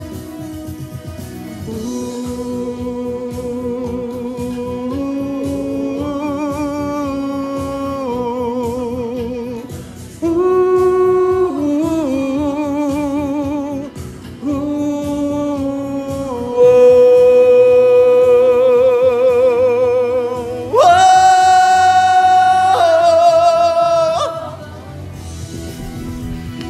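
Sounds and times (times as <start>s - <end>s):
person vocalising over a musical bridge: 1.7s - 25.0s.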